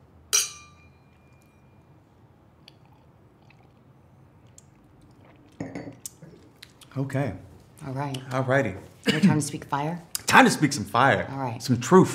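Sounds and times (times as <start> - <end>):
glasses clinking in a toast: 0.3 - 1.7, 5.6 - 6.0
speech: 7.0 - 12.1.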